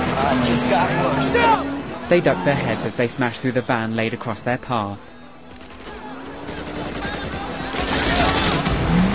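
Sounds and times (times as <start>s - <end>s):
speech: 0.2s - 5.1s
rapid gunfire during a car chase: 5.4s - 9.1s.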